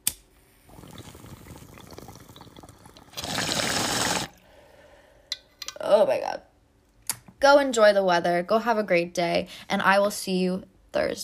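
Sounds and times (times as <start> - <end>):
bong water bubbling as someone hits a bowl: 0.7 - 4.4
speech: 6.0 - 6.5, 7.4 - 11.2.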